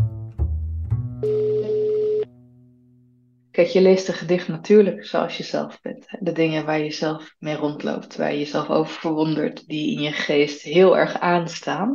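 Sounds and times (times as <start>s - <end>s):
telephone dialled to place a call: 1.2s - 2.3s
speech: 3.6s - 11.9s.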